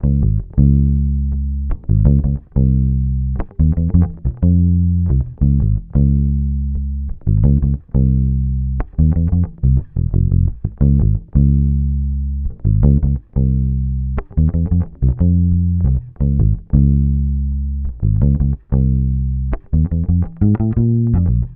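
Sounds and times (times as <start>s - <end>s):
electric bass loop in F minor: 0.0s - 21.5s.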